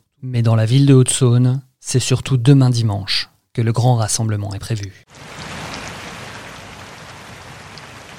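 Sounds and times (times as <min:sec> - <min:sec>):
speech: 0:00.2 - 0:05.4
steady rain pattering on hard surfaces: 0:05.1 - 0:08.1.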